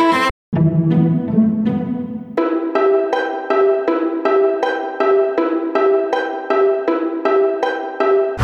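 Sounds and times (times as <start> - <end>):
string loops: 0.2 - 8.3.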